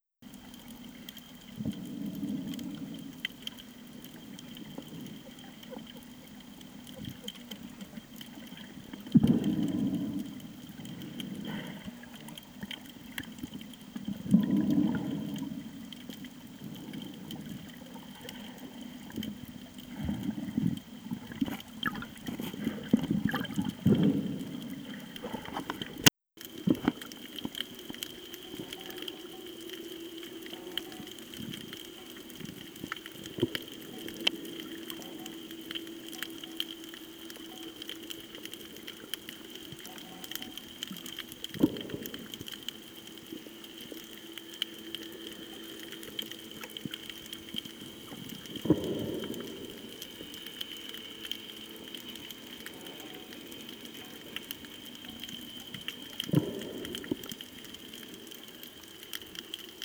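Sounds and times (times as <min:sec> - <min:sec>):
snorkelling at Nang Yuan Terrace on Koh Tao: 0:00.2 - 0:59.8.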